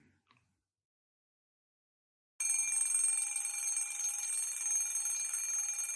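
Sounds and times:
loud electric alarm bell ringing with harsh metallic clatter: 2.4s - 5.9s.

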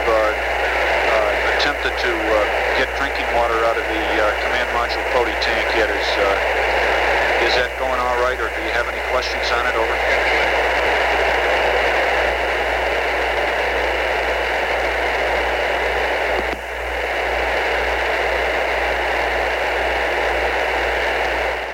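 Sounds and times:
loud hiss of static on a spaceflight radio line: 0.0s - 21.7s
low electrical hum: 0.0s - 21.7s
speech: 1.9s - 6.7s, 7.4s - 10.5s.

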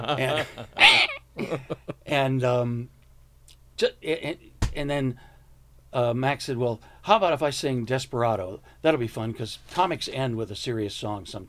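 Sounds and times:
speech: 0.0s - 3.0s, 3.8s - 5.3s, 5.9s - 11.4s
startled cat crying and yowling: 0.8s - 1.2s.

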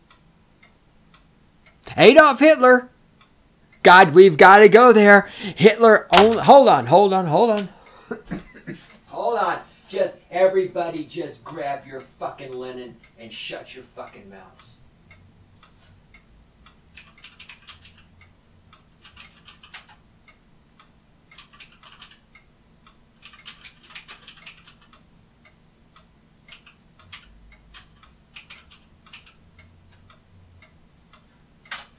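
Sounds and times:
speech: 2.0s - 2.9s, 3.8s - 14.7s
typing a search query on a computer keyboard: 16.9s - 18.1s, 19.0s - 20.0s, 21.3s - 22.3s, 23.2s - 25.0s, 26.4s - 30.0s, 31.7s - 31.9s.

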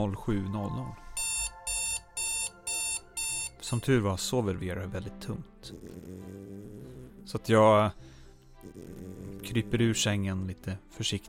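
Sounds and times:
speech: 0.0s - 1.0s, 3.7s - 11.2s
alarm clock ringing with bright electronic beeps: 1.1s - 3.9s.

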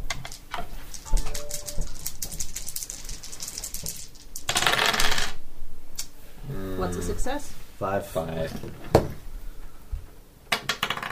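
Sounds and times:
dice rolling on a hard table: 0.1s - 5.4s, 10.5s - 11.0s
speech: 7.1s - 9.2s.

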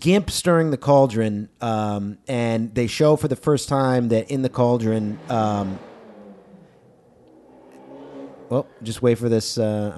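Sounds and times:
speech: 0.0s - 5.9s, 8.5s - 9.9s
car engine revving outside: 2.8s - 9.9s.

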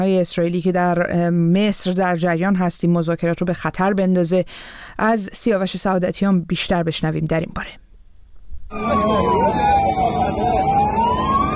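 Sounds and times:
speech: 0.0s - 7.8s, 8.7s - 9.7s
ambulance siren wailing: 8.7s - 11.5s.

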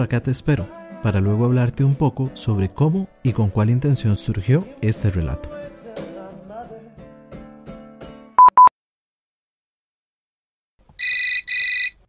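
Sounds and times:
speech: 0.0s - 5.8s
mobile phone ringing: 8.4s - 8.7s, 11.0s - 12.0s.

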